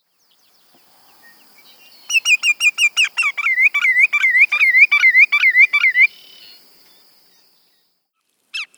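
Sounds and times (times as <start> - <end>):
Greater yellowlegs calling whistled and sharp repeated notes: 1.1 - 7.4.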